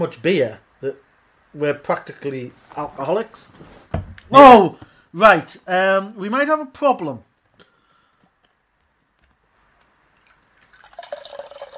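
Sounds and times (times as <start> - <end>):
speech: 0.0 - 7.3
water dripping from a computer mouse that fell into water: 10.1 - 11.7.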